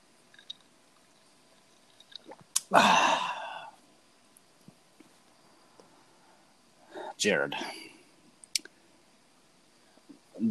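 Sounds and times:
small clicks: 0.3s - 2.7s
speech: 2.7s - 3.0s, 7.2s - 7.8s.

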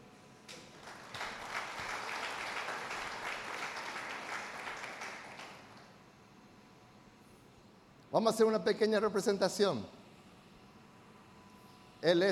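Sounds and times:
audience clapping: 0.5s - 5.9s
speech: 8.1s - 10.0s, 12.0s - 12.3s.

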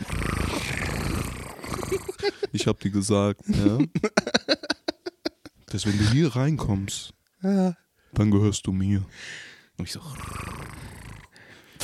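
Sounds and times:
person imitating a cat purring: 0.0s - 2.6s, 10.1s - 11.4s
laughter: 1.8s - 2.8s, 3.5s - 6.2s
speech: 2.2s - 4.7s, 5.7s - 10.8s.

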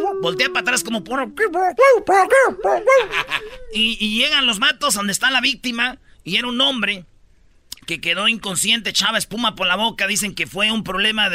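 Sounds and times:
person imitating golden retriever barking: 0.0s - 4.0s
speech: 0.2s - 7.1s, 7.9s - 11.3s
laughter: 2.8s - 3.8s.

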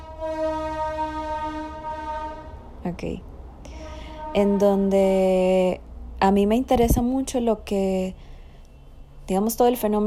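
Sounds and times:
passing train sounding a sustained horn: 0.0s - 2.8s, 3.7s - 5.1s
low rumble of a passing train: 0.0s - 8.1s
speech: 2.8s - 3.3s, 4.4s - 8.3s, 9.3s - 10.0s.

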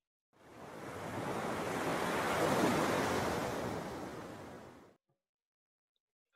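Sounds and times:
ocean wave breaking on shore: 0.4s - 5.0s.

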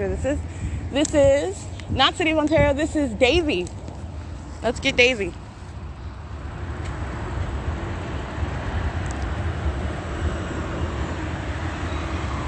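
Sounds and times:
speech: 0.2s - 3.8s, 4.6s - 5.4s
airplane engine roar passing overhead: 4.2s - 12.4s.

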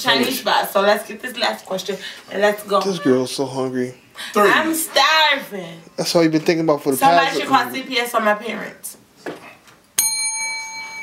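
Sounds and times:
speech: 0.0s - 9.4s
single bright metallic bell strike: 10.0s - 11.0s.

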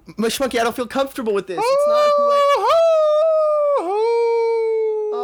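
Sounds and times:
speech: 0.2s - 2.8s
person imitating a wolf howl: 1.6s - 5.2s.

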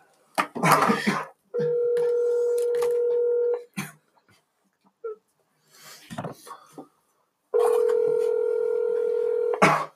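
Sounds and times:
person coughing: 0.6s - 1.4s, 9.6s - 9.9s
outgoing phone call ringback tone: 1.6s - 3.6s, 7.6s - 9.6s.

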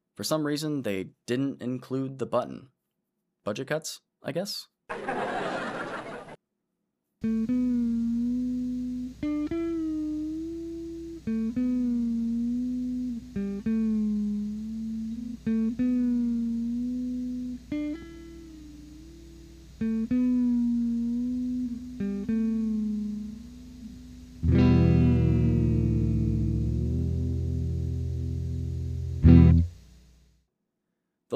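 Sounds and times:
speech: 0.2s - 2.8s, 3.4s - 5.4s
laughter: 4.9s - 6.4s
electric guitar sustained notes with vibrato arm pitch bending: 7.2s - 29.8s.

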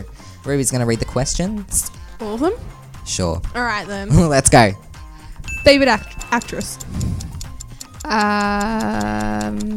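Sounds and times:
speech: 0.4s - 4.9s, 5.6s - 7.0s, 8.0s - 9.7s
timer ticking: 4.9s - 9.7s.

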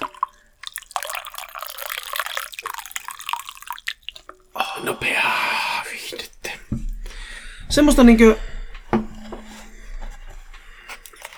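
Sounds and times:
coffee pouring into a cup: 0.0s - 4.5s, 10.9s - 11.3s
speech: 4.8s - 5.3s, 7.7s - 8.5s.

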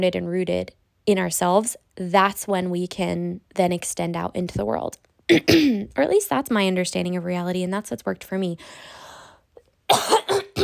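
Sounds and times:
speech: 0.0s - 9.0s, 9.9s - 10.4s
harsh coughing: 5.3s - 5.8s, 9.9s - 10.6s.

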